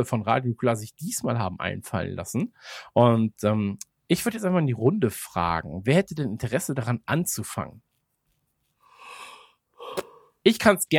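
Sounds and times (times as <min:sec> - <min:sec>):
speech: 0:00.0 - 0:07.9, 0:10.4 - 0:10.9
person yawning breathily: 0:09.1 - 0:10.4.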